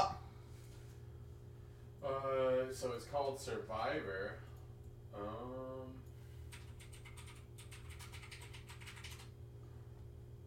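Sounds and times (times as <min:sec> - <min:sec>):
steady low hum: 0:00.0 - 0:10.4
speech: 0:02.0 - 0:04.5, 0:05.1 - 0:06.1
computer keyboard typing: 0:06.5 - 0:09.3.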